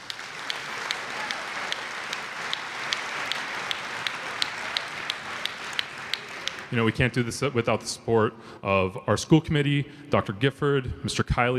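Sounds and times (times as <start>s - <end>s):
audience applauding at a school concert: 0.0s - 7.2s
speech: 6.7s - 11.5s.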